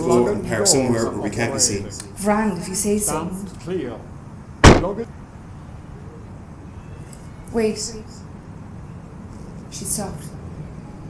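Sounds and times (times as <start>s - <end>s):
speech: 0.0s - 4.1s, 4.8s - 5.2s, 7.5s - 8.3s, 9.7s - 10.4s
car rear door slamming shut: 4.6s - 5.0s.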